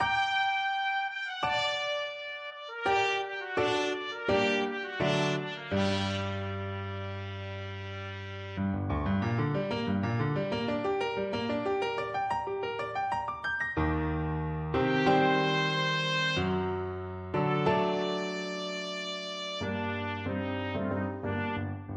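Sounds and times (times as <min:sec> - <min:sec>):
trumpet: 0:00.0 - 0:09.7, 0:14.8 - 0:21.9
piano: 0:00.0 - 0:21.9.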